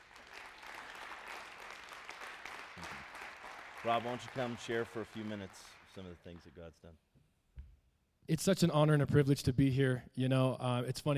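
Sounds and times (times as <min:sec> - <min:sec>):
audience clapping hands: 0:00.0 - 0:06.8
speech: 0:03.8 - 0:07.1, 0:08.3 - 0:11.1.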